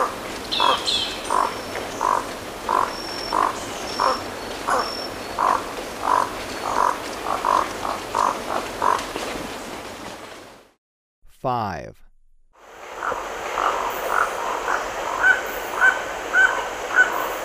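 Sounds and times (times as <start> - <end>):
Crimson-rumped toucanet croaking calls in Ecuador: 0.5 - 9.1, 12.9 - 17.4.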